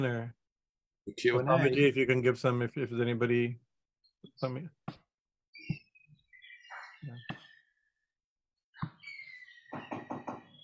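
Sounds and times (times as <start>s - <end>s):
speech: 0.0s - 0.4s, 1.0s - 3.6s, 4.3s - 5.0s, 7.0s - 7.4s
knocking on a door: 9.7s - 10.6s.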